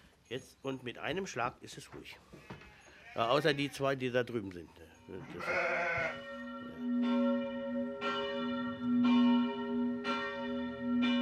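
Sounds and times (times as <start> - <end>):
speech: 0.3 - 2.6, 3.2 - 7.2
sheep or goat bleating: 2.5 - 3.9, 5.2 - 6.3
abbey church bells ringing for midday prayer: 5.4 - 11.2.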